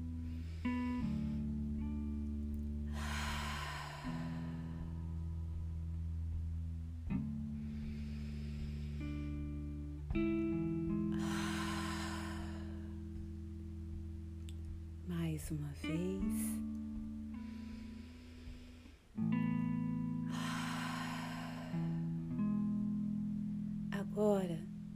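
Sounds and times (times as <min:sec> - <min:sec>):
deep breaths exhaled audibly through the mouth: 0:00.0 - 0:01.8, 0:02.8 - 0:05.4, 0:07.5 - 0:10.2, 0:10.9 - 0:13.3, 0:17.3 - 0:22.3
soft steady ambient music drone: 0:00.0 - 0:24.9
speech: 0:15.5 - 0:16.7.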